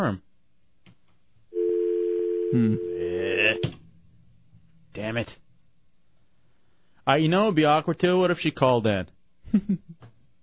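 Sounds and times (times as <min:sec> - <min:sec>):
speech: 0:00.0 - 0:00.3, 0:02.5 - 0:02.9, 0:05.0 - 0:05.4, 0:07.1 - 0:10.1
telephone dial tone: 0:01.6 - 0:03.7.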